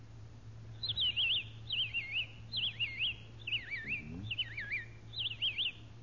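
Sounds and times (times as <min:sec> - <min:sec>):
low steady hum: 0:00.0 - 0:06.0
robin singing: 0:00.7 - 0:06.0.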